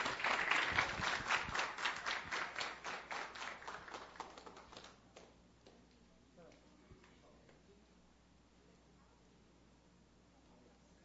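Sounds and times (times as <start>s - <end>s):
group applauding a municipal guard receiving an honor: 0.0s - 5.9s.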